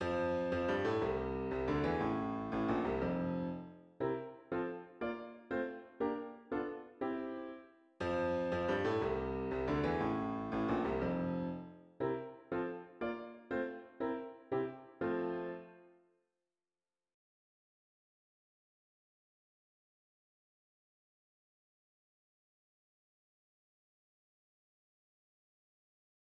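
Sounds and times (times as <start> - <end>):
piano piece in F major: 0.0 - 16.0.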